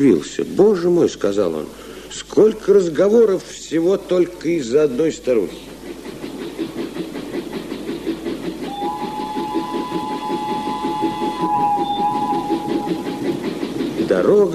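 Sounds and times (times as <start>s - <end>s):
speech: 0.0s - 5.8s
train rumbling along the rails among mountains and snow: 0.0s - 14.5s
long two-tone train whistle or horn: 8.7s - 13.5s.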